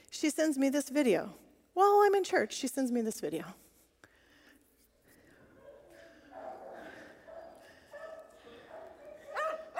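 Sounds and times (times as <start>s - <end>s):
speech: 0.2s - 3.6s
small dogs barking and yipping: 5.6s - 9.7s.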